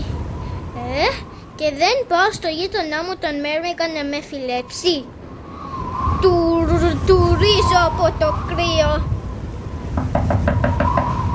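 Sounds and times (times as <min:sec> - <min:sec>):
low hum: 0:00.0 - 0:10.6
speech: 0:00.9 - 0:05.2, 0:06.2 - 0:06.4, 0:07.0 - 0:09.1
knocking on a wooden door in winter: 0:10.0 - 0:11.2.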